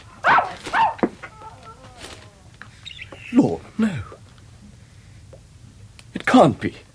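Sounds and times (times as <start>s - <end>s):
dog giving drawn-out whiny barks: 0.2s - 2.2s
dog whimpering: 0.3s - 2.6s
speech: 6.4s - 6.9s.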